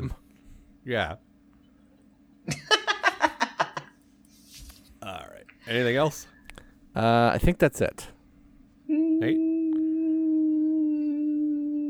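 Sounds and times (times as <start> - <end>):
speech: 0.8 - 1.3, 5.0 - 6.3, 7.0 - 8.1, 9.2 - 9.5
laughter: 2.5 - 4.0
person howling: 8.9 - 11.8.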